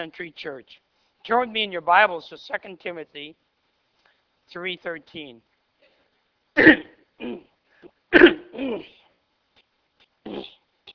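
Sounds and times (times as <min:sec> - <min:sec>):
speech: 0:00.0 - 0:03.4, 0:04.5 - 0:05.5, 0:06.6 - 0:07.5, 0:08.6 - 0:09.0
harsh throaty coughs: 0:06.6 - 0:07.5, 0:08.1 - 0:09.1, 0:10.3 - 0:10.6.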